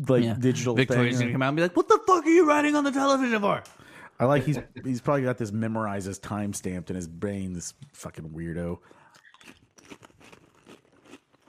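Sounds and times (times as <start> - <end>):
speech: 0.0 - 9.6
crunching and chewing potato chips: 9.0 - 11.4.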